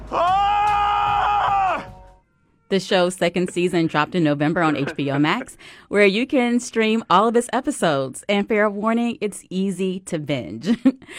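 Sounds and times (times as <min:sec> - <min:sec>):
person screaming: 0:00.0 - 0:01.9
speech: 0:02.7 - 0:11.1
laughter: 0:03.2 - 0:05.6.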